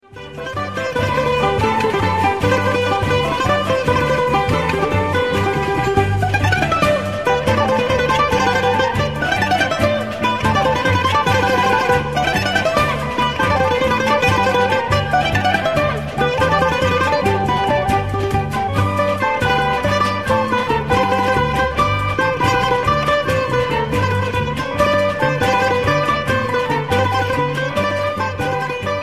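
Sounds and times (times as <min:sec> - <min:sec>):
Greek folk music: 0:00.0 - 0:29.0.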